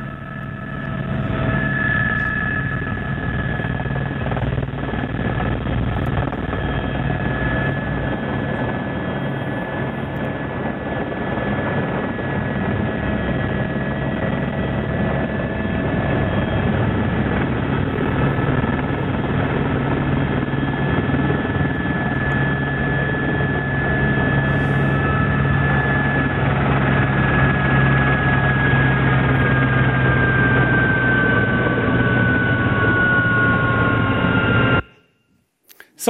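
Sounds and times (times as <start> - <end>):
helicopter flying in to land: 0.0 - 34.9.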